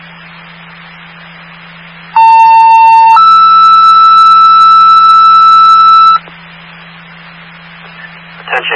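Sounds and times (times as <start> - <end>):
two-part electronic emergency dispatch alert tone: 2.2 - 6.2.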